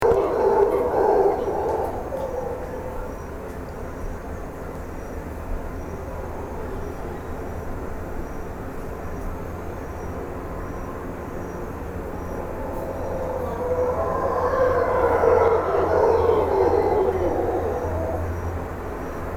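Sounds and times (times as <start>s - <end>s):
Alouatta howler monkey howling in Tortuguero: 0.0s - 3.9s, 11.0s - 19.2s.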